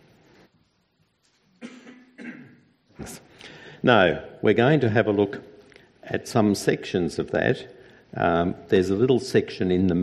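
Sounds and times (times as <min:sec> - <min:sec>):
person coughing: 0:01.6 - 0:02.7
speech: 0:03.0 - 0:05.5, 0:06.1 - 0:10.0.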